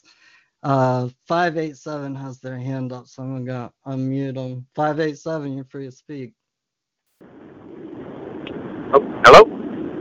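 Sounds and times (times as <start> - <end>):
speech: 0.6 - 6.4, 8.9 - 9.6
wind buffeting a caller's microphone: 7.2 - 9.9.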